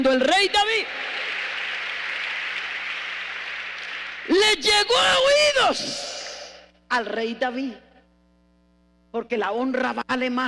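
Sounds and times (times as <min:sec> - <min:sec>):
speech: 0:00.0 - 0:01.0, 0:04.4 - 0:06.1, 0:06.9 - 0:07.9, 0:09.1 - 0:10.4
congregation applause in a church: 0:00.3 - 0:05.3.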